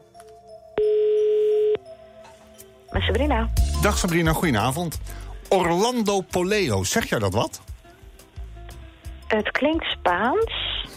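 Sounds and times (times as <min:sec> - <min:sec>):
faint music: 0:00.0 - 0:10.9
telephone ringback tone while placing a call: 0:00.8 - 0:01.9
speech: 0:03.0 - 0:07.7, 0:09.3 - 0:10.9.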